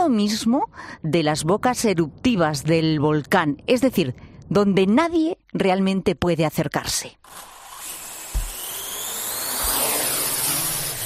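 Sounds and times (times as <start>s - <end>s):
speech: 0.1s - 7.5s
mechanical whine with gliding pitch-shifting tones: 7.3s - 11.0s.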